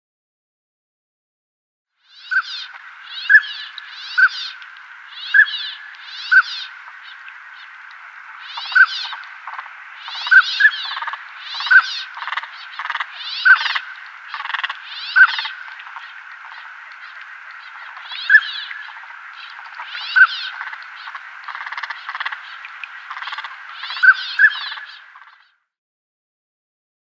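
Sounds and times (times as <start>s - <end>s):
Northern Pintail display calls: 5.2s - 7.8s, 8.4s - 25.3s.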